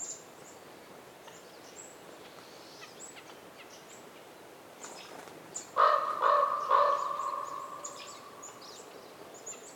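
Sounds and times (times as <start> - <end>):
wind in winter forest: 0.0 - 9.7
faint high chirps from other birds: 5.6 - 9.7
raven calling in winter forest in North Laurentian Woods, Canada: 5.8 - 8.6.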